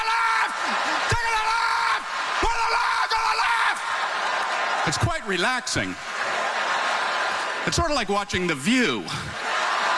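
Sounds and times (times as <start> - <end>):
several women screaming loudly: 0.0 - 4.2
laughter: 0.0 - 9.9
speech: 4.9 - 6.2, 7.6 - 9.4.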